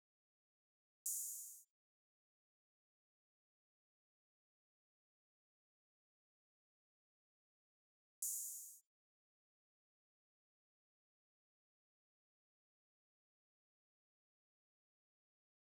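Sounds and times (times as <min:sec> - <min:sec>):
open hi-hat: 0:01.1 - 0:01.7, 0:08.2 - 0:08.8.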